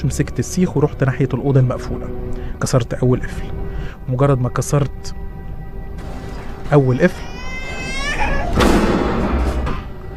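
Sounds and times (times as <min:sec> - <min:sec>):
speech: 0:00.0 - 0:05.2, 0:06.7 - 0:07.3
dense low rumbling background: 0:00.0 - 0:10.1
child or little girl crying for help from a locked room: 0:06.9 - 0:08.6.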